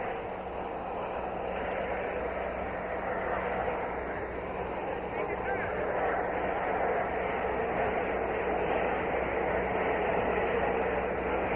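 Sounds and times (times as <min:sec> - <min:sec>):
Army turbine helicopter running up with rotors spinning: 0:00.0 - 0:11.5.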